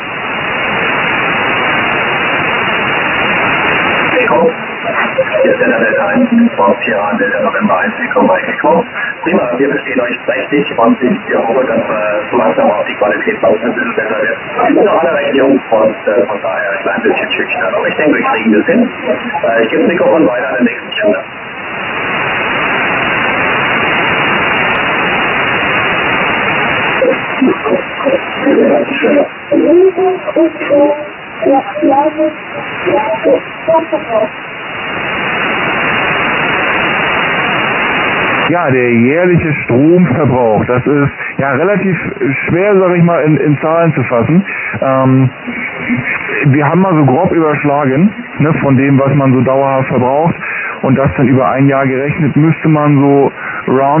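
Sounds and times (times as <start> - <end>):
radio static hiss: 0.0 - 53.9
tinny band-limited voice talking over radio channel: 4.0 - 21.3, 26.9 - 34.3, 38.5 - 53.9
speech: 4.3 - 4.6, 5.4 - 21.4, 28.6 - 34.6, 38.5 - 53.9.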